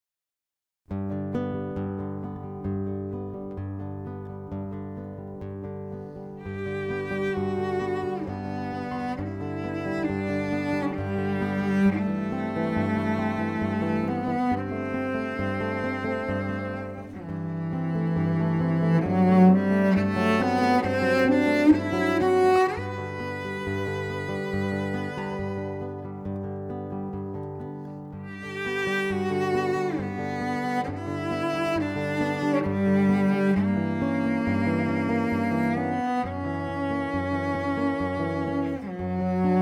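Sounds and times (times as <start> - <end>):
cello: 0.9 - 39.5
guitar: 0.9 - 39.5
violin: 5.9 - 39.5.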